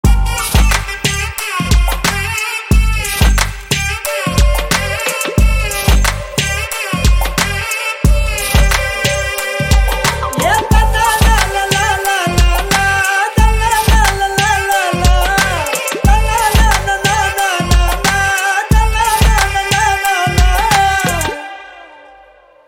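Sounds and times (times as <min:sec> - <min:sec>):
humming background music tone: 0:00.0 - 0:22.6.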